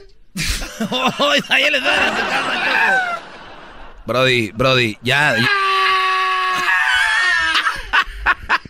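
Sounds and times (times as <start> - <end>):
laughter: 0.4 - 4.1, 6.8 - 8.6
loud exaggerated crying: 0.7 - 3.3, 5.3 - 8.1
speech: 0.8 - 3.2, 4.1 - 5.6.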